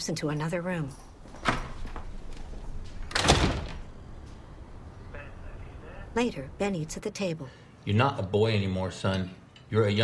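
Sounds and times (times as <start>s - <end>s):
speech: 0.0s - 1.1s, 6.2s - 10.0s
door pushed shut: 3.1s - 3.9s.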